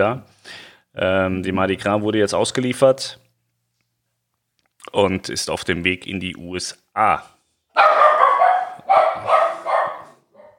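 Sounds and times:
speech: 0.0 - 3.2, 4.8 - 8.0
dog barking at the door: 7.7 - 10.5.

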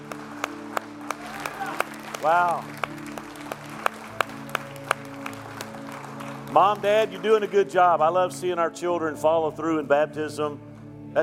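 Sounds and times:
crowd applauding in a large room: 0.0 - 8.1
speech: 2.2 - 2.9, 6.5 - 11.2.

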